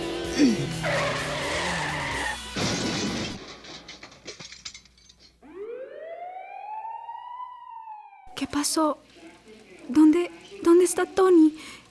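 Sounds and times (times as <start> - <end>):
speeding car skidding with tires squealing: 0.7 - 2.5
speech: 8.6 - 9.1, 9.9 - 11.8.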